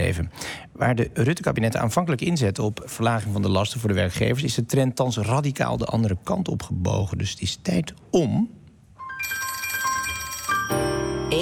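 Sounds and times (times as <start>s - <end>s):
speech: 0.1s - 8.6s
telephone ringing for an outgoing call: 9.0s - 11.4s.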